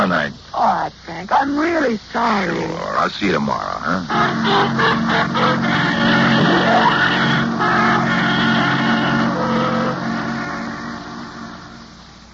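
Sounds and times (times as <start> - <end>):
speech: 0.1 - 7.8
taxi cab driving away: 3.0 - 12.3.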